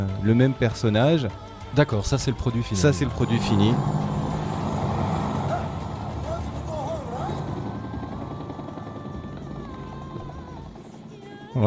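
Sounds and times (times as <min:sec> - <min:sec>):
speech: 0:00.2 - 0:04.0
helicopter engine rumble: 0:02.6 - 0:11.6
faint tonal whines: 0:02.7 - 0:11.5.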